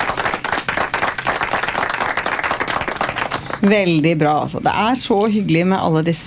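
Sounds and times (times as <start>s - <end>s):
audience applause: 0.0s - 3.7s
speech: 3.6s - 6.2s.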